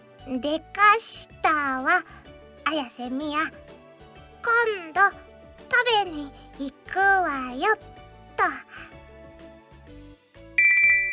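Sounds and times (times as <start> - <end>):
speech: 0.2 - 3.7, 4.4 - 8.9
phone message notification tone for an incoming reply: 10.6 - 11.1.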